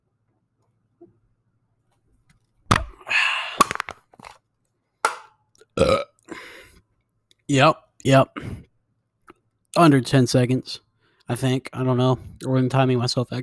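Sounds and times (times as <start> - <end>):
person burping after chugging a can of beer: 5.6 - 6.4
speech: 7.5 - 8.6, 9.8 - 13.4.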